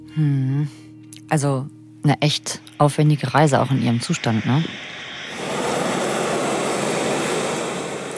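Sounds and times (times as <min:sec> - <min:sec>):
speech: 0:00.2 - 0:05.0
airplane engine roar at airport: 0:02.6 - 0:08.1.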